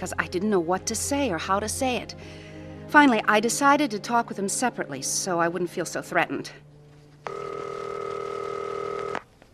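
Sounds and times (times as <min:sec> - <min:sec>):
speech: 0:00.0 - 0:07.6
electronic telephone ring: 0:07.3 - 0:09.2.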